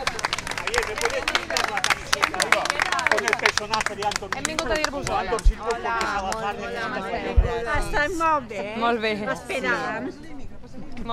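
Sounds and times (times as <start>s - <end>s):
crowd behind barriers beside a hospital entrance applauding: 0.0s - 6.5s
speech: 3.6s - 10.4s.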